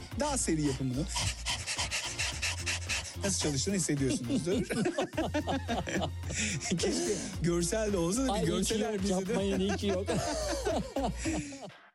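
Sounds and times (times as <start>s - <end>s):
person panting like a dog as a breathing exercise: 0.0s - 7.4s, 10.2s - 11.7s
speech: 0.2s - 1.4s, 3.2s - 11.8s
laughter: 2.0s - 7.4s, 8.2s - 11.8s.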